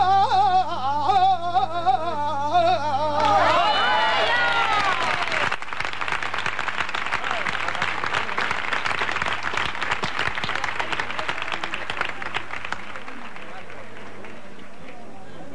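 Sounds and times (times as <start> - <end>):
crowd voices: 0.1 - 5.5, 7.0 - 15.5
audience applauding after a saeta: 3.2 - 15.1.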